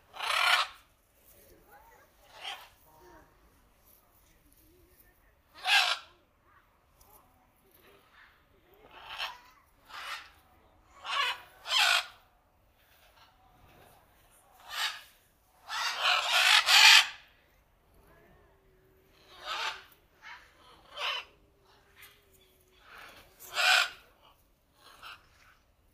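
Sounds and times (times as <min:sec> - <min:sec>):
macaw squawks: 0:00.1 - 0:00.9, 0:05.5 - 0:06.2, 0:08.9 - 0:10.4, 0:11.0 - 0:12.2, 0:14.6 - 0:17.2, 0:19.2 - 0:21.4, 0:22.8 - 0:25.5.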